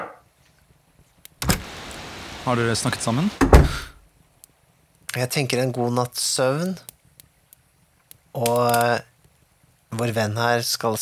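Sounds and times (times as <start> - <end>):
speech: 2.4 - 3.9, 5.2 - 6.9, 8.4 - 9.1, 9.9 - 11.0
knocking on a door: 3.4 - 3.9.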